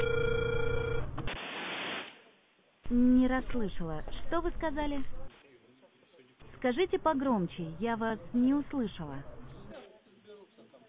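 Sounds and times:
telephone ringing tone while a call is being dialed: 0.0s - 1.2s
dense hiss: 1.3s - 2.3s
speech: 2.9s - 5.2s, 6.6s - 9.3s.

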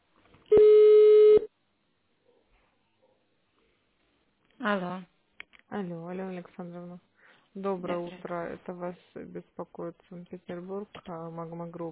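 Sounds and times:
telephone tone as an extension number is dialed: 0.5s - 1.5s
speech: 4.6s - 5.1s, 5.7s - 11.9s.

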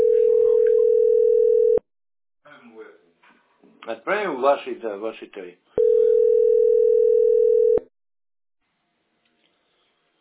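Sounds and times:
electronic phone ringing tone of an unanswered call: 0.0s - 1.8s, 5.8s - 7.9s
speech: 3.9s - 5.7s.

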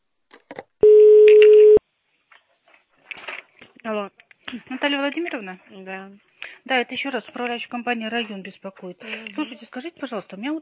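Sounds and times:
telephone ringback tone while a call waits to connect: 0.8s - 1.8s
speech: 3.9s - 10.5s.

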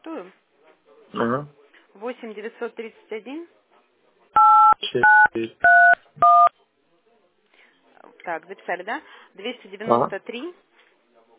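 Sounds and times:
speech: 0.0s - 0.4s, 1.1s - 3.6s, 4.9s - 6.4s, 8.2s - 10.7s
dual-tone phone keypad beeps while entering a number: 4.4s - 6.5s.

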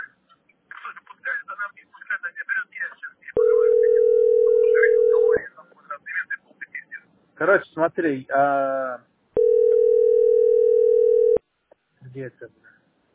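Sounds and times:
telephone dial tone: 3.4s - 5.4s, 9.4s - 11.4s
speech: 7.4s - 9.1s, 12.2s - 12.6s.

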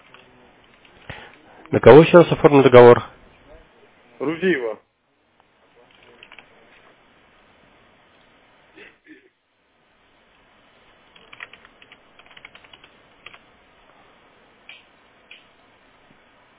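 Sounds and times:
speech: 1.7s - 3.1s, 4.2s - 4.9s
typing on a computer keyboard: 5.9s - 6.5s, 11.1s - 13.4s.

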